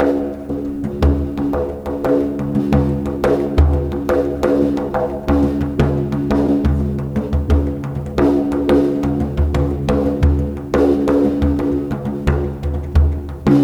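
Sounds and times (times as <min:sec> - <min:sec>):
bodhrán drumming: 0:00.0 - 0:13.6.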